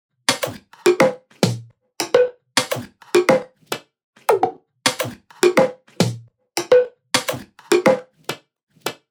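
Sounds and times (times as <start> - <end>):
experimental percussion drum loop: 0.3 - 3.5, 4.3 - 8.1.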